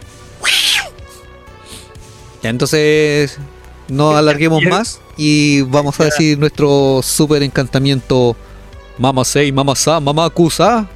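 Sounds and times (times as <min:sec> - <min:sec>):
cat meowing: 0:00.4 - 0:01.0
speech: 0:02.4 - 0:10.9.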